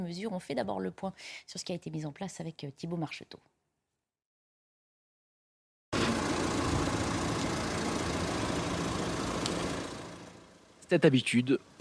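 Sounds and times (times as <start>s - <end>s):
speech: 0.0s - 3.6s, 10.9s - 11.8s
parked car engine idling with faint rattling: 6.0s - 10.8s.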